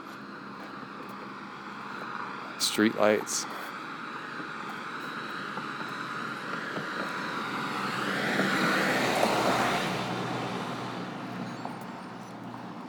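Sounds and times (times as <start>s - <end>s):
speech: 2.6s - 3.6s
car driving past on a street: 4.4s - 12.7s.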